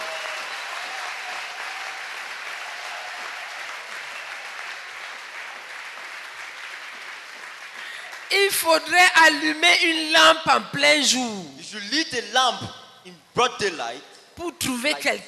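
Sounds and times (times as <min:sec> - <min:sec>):
congregation clapping hands at a night of prayer gathering: 0:00.0 - 0:09.0
speech: 0:08.3 - 0:15.2.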